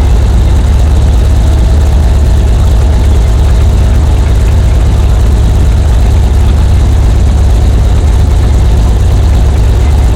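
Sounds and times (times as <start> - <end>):
Hetzer tank engine under load, heard from inside: 0.0 - 10.1.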